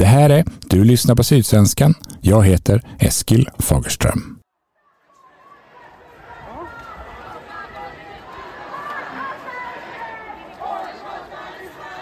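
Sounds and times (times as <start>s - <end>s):
speech: 0.1s - 4.4s
crowd chanting at a pro-Palestinian demonstration in Malmö in autumn: 4.9s - 12.0s.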